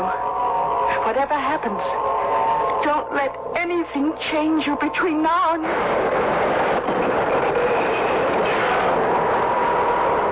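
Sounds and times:
subway train rumbling along the tracks: 0:00.0 - 0:10.3
speech: 0:01.1 - 0:06.8
loud continuous roar of subway train wheels and car noise: 0:05.6 - 0:10.3.

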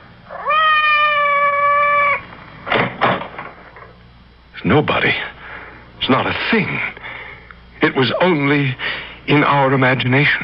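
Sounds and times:
cat meowing outside a door: 0:00.3 - 0:02.2
speech: 0:04.6 - 0:05.3, 0:06.1 - 0:07.0, 0:07.8 - 0:10.4.

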